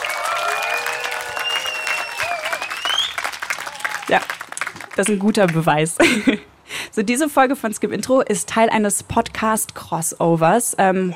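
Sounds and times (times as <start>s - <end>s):
high whistles from a live crowd: 0.0s - 3.4s
live crowd whooping and cheering: 0.0s - 5.0s
live crowd applauding: 0.0s - 5.8s
speech: 4.1s - 4.4s, 5.0s - 11.1s
laughter: 6.0s - 6.5s.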